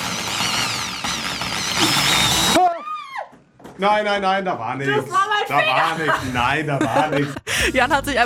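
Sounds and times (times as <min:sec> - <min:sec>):
large power drill boring holes into chestnuts: 0:00.0 - 0:02.6
speech: 0:03.8 - 0:08.2
laughter: 0:05.6 - 0:08.2.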